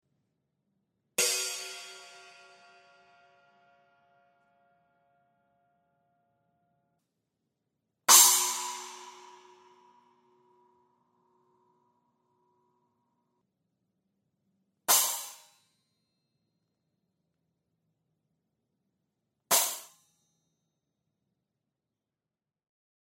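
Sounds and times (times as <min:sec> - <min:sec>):
pre-configured cymbal stack: 0:08.1 - 0:10.8, 0:14.9 - 0:15.7, 0:19.5 - 0:20.1.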